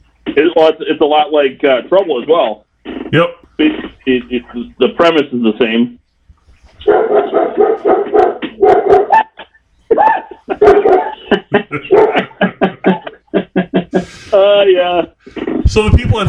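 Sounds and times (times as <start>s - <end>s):
speech: 0.4s - 6.0s, 6.8s - 8.0s, 14.3s - 16.2s
dog barking: 6.8s - 13.1s
laughter: 7.1s - 16.2s.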